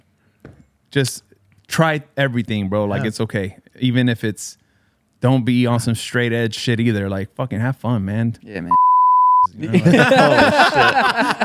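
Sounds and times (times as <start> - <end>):
speech: 0.9 - 4.6, 5.2 - 11.4
loud steady censor bleep: 8.7 - 9.5
chuckling: 9.5 - 11.4.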